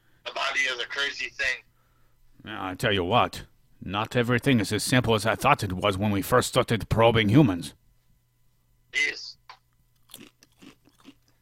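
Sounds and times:
low steady hum: 0:00.0 - 0:11.4
speech: 0:00.6 - 0:01.7, 0:02.4 - 0:07.8, 0:08.9 - 0:09.3
chips being chewed: 0:10.0 - 0:11.4.

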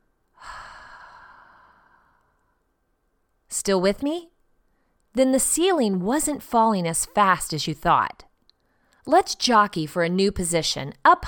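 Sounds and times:
slow breathy exhale after a deep breath: 0:00.4 - 0:02.6
speech: 0:03.6 - 0:04.3, 0:05.2 - 0:08.3, 0:09.0 - 0:11.2.

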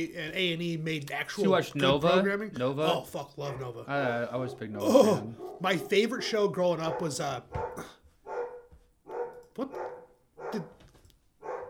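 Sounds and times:
speech: 0:00.0 - 0:07.9, 0:09.6 - 0:09.8, 0:10.5 - 0:10.7
dog barking at people outside: 0:04.4 - 0:11.6.

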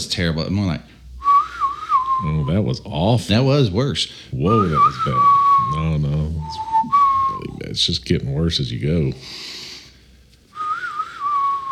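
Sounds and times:
speech: 0:00.1 - 0:01.0, 0:02.2 - 0:09.6
person whistling a single wavering breathy tone: 0:01.2 - 0:02.3, 0:04.5 - 0:07.6, 0:10.6 - 0:11.7.

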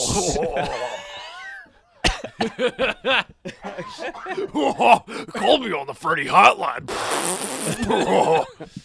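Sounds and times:
laughter: 0:00.0 - 0:05.2, 0:07.6 - 0:08.8
speech: 0:00.2 - 0:01.0, 0:02.4 - 0:08.8
loud fart: 0:06.9 - 0:07.9.

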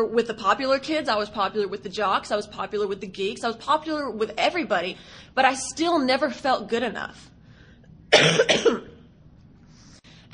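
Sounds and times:
speech: 0:00.0 - 0:07.3, 0:08.1 - 0:08.8
harsh dry cough: 0:08.1 - 0:09.0.

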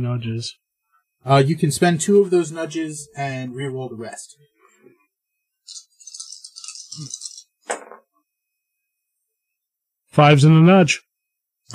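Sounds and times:
speech: 0:00.0 - 0:00.6, 0:01.2 - 0:05.0, 0:07.0 - 0:07.2, 0:10.1 - 0:11.1
dice rattling in a cup: 0:05.7 - 0:07.5.

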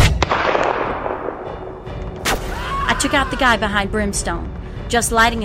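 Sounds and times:
rifle gunshot: 0:00.2 - 0:02.5
speech: 0:03.1 - 0:05.4.

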